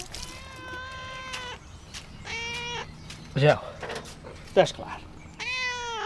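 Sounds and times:
cat meowing: 0:00.2 - 0:01.6, 0:02.2 - 0:02.9, 0:05.4 - 0:06.0
speech: 0:03.4 - 0:03.8, 0:04.6 - 0:05.1.

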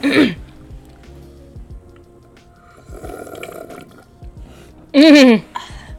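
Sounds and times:
sipping and swallowing a drink: 0:02.8 - 0:04.2.

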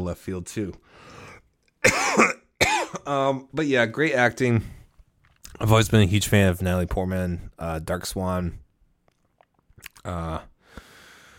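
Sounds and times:
speech: 0:00.0 - 0:01.2, 0:01.8 - 0:02.4, 0:03.0 - 0:04.8, 0:05.5 - 0:08.6, 0:10.0 - 0:10.5
loud harsh coughs: 0:01.8 - 0:03.1.

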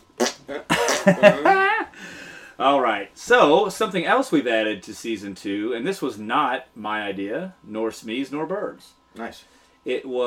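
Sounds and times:
slap fart sound effect: 0:00.0 - 0:01.4
speech: 0:00.5 - 0:01.6, 0:02.6 - 0:10.2
laughter: 0:00.7 - 0:02.0.

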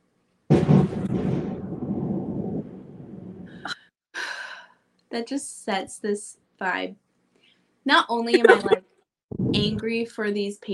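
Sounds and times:
thunder rumbling outside: 0:00.5 - 0:03.7
speech: 0:05.2 - 0:07.0, 0:07.9 - 0:08.9, 0:09.5 - 0:10.7
laughter: 0:08.4 - 0:08.8.

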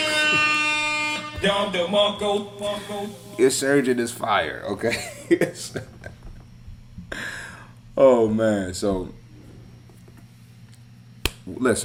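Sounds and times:
buzzer sound effect: 0:00.0 - 0:03.1
speech: 0:01.4 - 0:06.2, 0:08.0 - 0:09.2, 0:11.4 - 0:11.8
laughter: 0:04.8 - 0:06.4.

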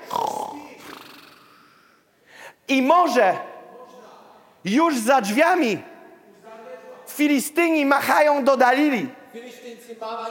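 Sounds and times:
person imitating snoring: 0:00.0 - 0:01.9
speech: 0:02.7 - 0:03.5, 0:04.6 - 0:05.9, 0:07.2 - 0:10.2.

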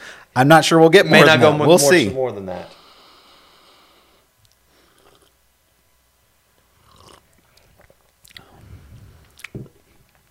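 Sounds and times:
speech: 0:00.4 - 0:02.8
person slurping a very hot cup of coffee: 0:04.9 - 0:05.4, 0:06.8 - 0:09.6
wet mouth smacks and swallowing: 0:06.9 - 0:10.2.

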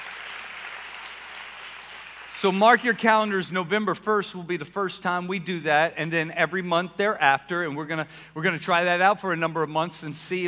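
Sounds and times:
room full of people clapping: 0:00.0 - 0:03.3
speech: 0:02.4 - 0:10.4.

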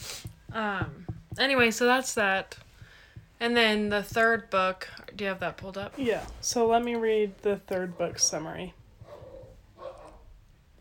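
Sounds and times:
speech: 0:00.5 - 0:02.6, 0:03.4 - 0:08.8
dogs growling and barking playfully: 0:09.0 - 0:10.3.

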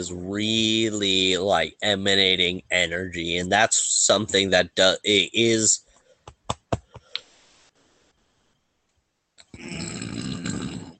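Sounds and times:
speech: 0:00.0 - 0:05.8
clicks and taps: 0:06.0 - 0:07.3
person burping: 0:09.5 - 0:10.9.

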